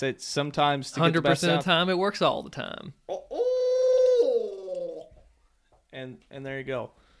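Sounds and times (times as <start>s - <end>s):
speech: 0.0s - 3.1s, 6.0s - 7.0s
person imitating owl hoot with gargling throat roll: 3.1s - 5.1s.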